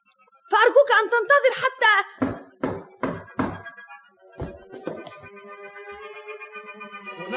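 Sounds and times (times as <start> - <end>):
speech: 0.6 - 2.1
loud knocking on the front door: 2.2 - 3.6.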